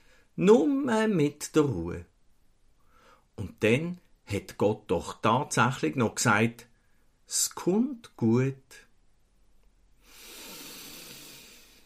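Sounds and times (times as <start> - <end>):
deep slow breath drawn in and let out: 0.0 - 0.4, 2.8 - 3.3, 10.0 - 11.8
speech: 0.4 - 2.1, 3.4 - 6.7, 7.3 - 8.8.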